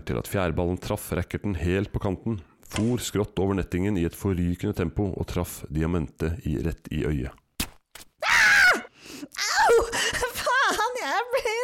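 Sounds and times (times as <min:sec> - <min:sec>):
speech: 0:00.1 - 0:07.4
woman screaming in pain: 0:08.2 - 0:11.0
woman crying and moaning in anguish: 0:08.2 - 0:11.6.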